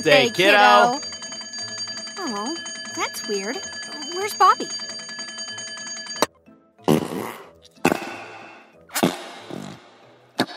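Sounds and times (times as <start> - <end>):
speech: 0.0 - 1.1, 2.2 - 4.9
ringing tone: 0.0 - 6.3
fart putty toy squeezed making squelchy fart noises: 6.8 - 10.0.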